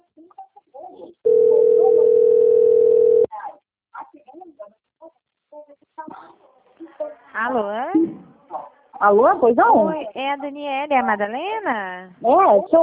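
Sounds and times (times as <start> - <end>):
telephone ringing tone of an incoming call: 1.3 - 3.3
speech: 9.0 - 12.8.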